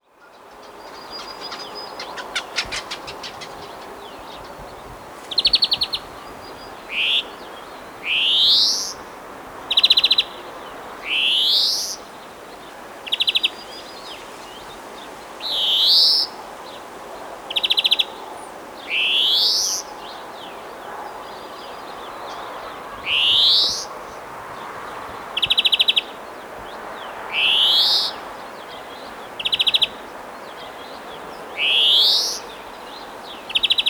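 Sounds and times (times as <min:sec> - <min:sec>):
birds singing in the early morning: 0:00.0 - 0:33.8.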